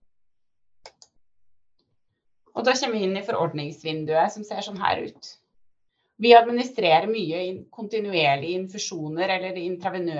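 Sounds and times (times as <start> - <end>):
computer mouse clicks selecting a medication dose: 0.8 - 1.2
speech: 2.6 - 5.4, 6.2 - 10.1.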